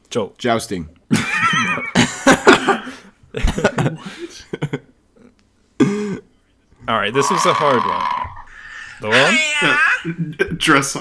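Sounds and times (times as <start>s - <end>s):
speech: 0.1s - 1.3s, 3.4s - 4.8s, 6.9s - 8.2s, 9.0s - 10.9s
laughter: 1.1s - 4.9s, 9.6s - 10.8s
horse whinnying loudly with snorting bursts: 7.1s - 10.1s.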